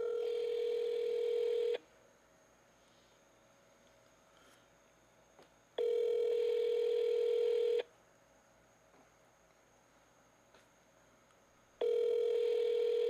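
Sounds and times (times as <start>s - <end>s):
outgoing phone call ringback tone: 0.0s - 1.8s, 5.8s - 7.8s, 11.8s - 13.0s.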